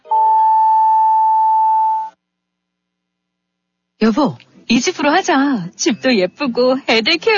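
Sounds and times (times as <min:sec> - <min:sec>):
radio time signal electronic tone: 0:00.0 - 0:02.2
speech: 0:04.1 - 0:07.3.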